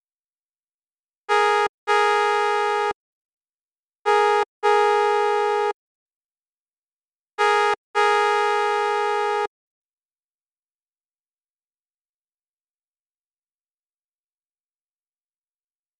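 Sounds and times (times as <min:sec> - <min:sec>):
klaxon horn: 0:01.3 - 0:03.0, 0:04.1 - 0:05.8, 0:07.4 - 0:09.5.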